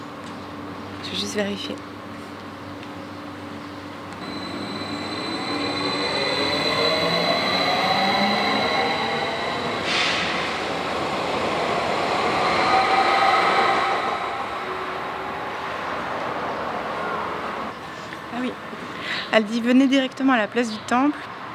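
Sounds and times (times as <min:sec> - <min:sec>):
train rolling along the rails: 0:00.0 - 0:19.0
speech: 0:01.1 - 0:01.9, 0:19.4 - 0:21.3
train squeals: 0:04.2 - 0:10.8, 0:11.8 - 0:15.4.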